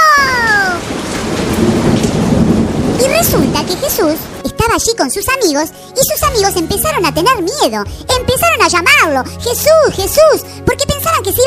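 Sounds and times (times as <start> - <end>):
heavy rain in a thunderstorm: 0.0 - 6.8
deep rumble of thunder: 0.0 - 8.4
speech: 3.6 - 11.4.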